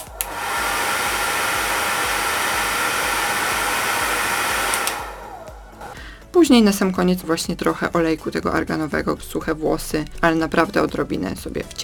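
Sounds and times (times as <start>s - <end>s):
hair dryer with diffuser running: 0.0s - 6.0s
speech: 6.4s - 11.8s.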